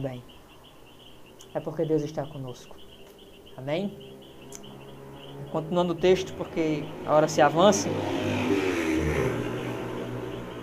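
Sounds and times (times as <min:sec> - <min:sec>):
speech: 0:00.0 - 0:00.4, 0:01.5 - 0:02.9, 0:03.6 - 0:04.1, 0:05.4 - 0:08.7
motorcycle engine passing by: 0:02.6 - 0:10.6.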